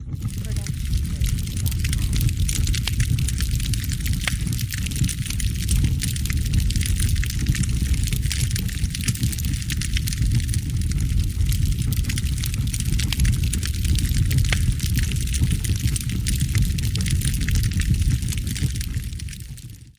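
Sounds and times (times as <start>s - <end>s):
large fire burning: 0.0s - 19.9s.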